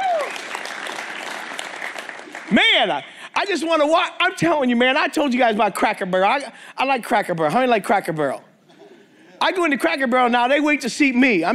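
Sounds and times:
enthusiastic cheers and whoops: 0.0 - 0.6
crowd clapping: 0.0 - 3.0
speech: 2.5 - 8.5, 9.4 - 11.5.

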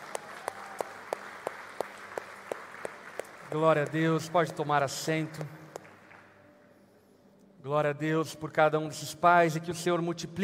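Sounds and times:
large church audience clapping in a reverberant hall: 0.0 - 6.4
speech: 3.5 - 5.6, 7.7 - 10.4.

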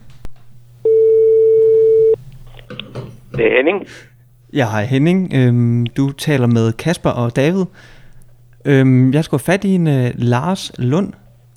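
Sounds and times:
low hum: 0.0 - 11.5
telephone ringback tone as a call is placed: 0.8 - 2.2
speech: 3.4 - 8.0, 8.6 - 11.2.

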